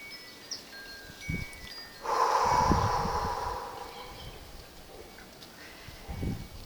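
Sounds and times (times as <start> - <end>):
steady hiss: 0.0 - 6.0
breathing out through the mouth: 2.0 - 4.6.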